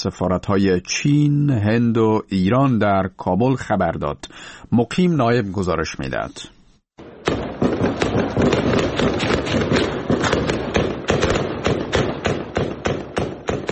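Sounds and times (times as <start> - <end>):
speech: 0.0 - 6.6, 8.1 - 9.8
explosions in a city in Kabul: 7.0 - 13.7
gunfire in a city in Kabul: 7.0 - 13.7.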